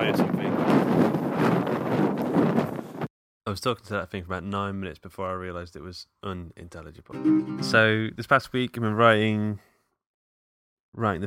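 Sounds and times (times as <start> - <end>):
speech: 0.0 - 0.5, 3.5 - 9.7, 10.9 - 11.2
wind buffeting a microphone outdoors in London: 0.0 - 3.1.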